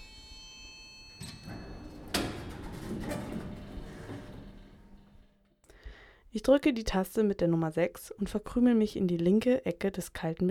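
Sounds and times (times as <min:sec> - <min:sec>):
small elevator door sliding open: 0:01.1 - 0:05.4
elevator mechanical rattling and creaking: 0:01.2 - 0:05.4
speech: 0:06.3 - 0:10.4.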